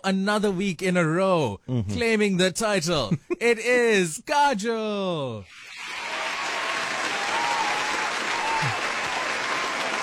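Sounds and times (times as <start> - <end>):
speech: 0.0 - 5.8
crowd applause for the champion: 5.6 - 10.0
faint whoops of cheering: 5.8 - 10.0.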